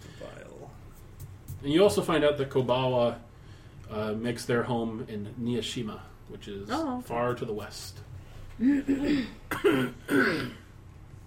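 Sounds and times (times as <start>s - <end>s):
speech: 1.6s - 3.3s, 3.9s - 10.6s
throaty coughs: 8.7s - 10.7s.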